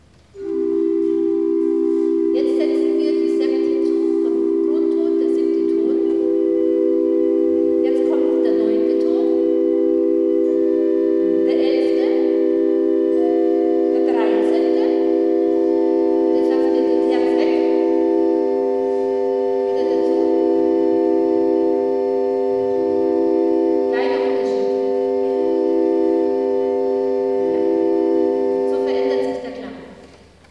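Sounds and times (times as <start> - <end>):
modern organ playing a scale: 0.0 - 29.8.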